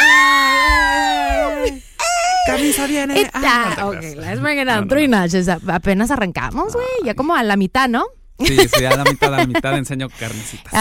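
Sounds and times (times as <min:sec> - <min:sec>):
person imitating girls screaming: 0:00.0 - 0:02.6
laughter: 0:02.4 - 0:04.2, 0:08.4 - 0:09.9
speech: 0:02.6 - 0:10.8.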